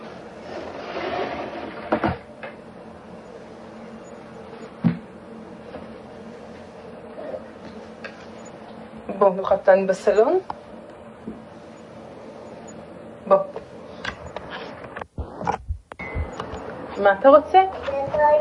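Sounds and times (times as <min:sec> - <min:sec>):
low steady hum: 0:00.0 - 0:18.3
drawer opening and closing: 0:00.4 - 0:02.2
speech: 0:01.9 - 0:02.2, 0:09.2 - 0:10.6, 0:17.0 - 0:18.3.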